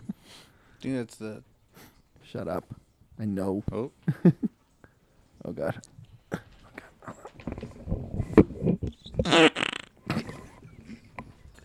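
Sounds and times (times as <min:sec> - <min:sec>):
speech: 0:00.8 - 0:01.5, 0:02.3 - 0:04.5, 0:05.5 - 0:05.9, 0:09.2 - 0:09.6
fart into a microphone: 0:07.9 - 0:10.5.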